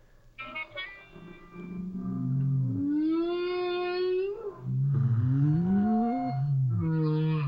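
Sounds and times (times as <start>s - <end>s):
long moaning whale calls: 1.1s - 7.4s.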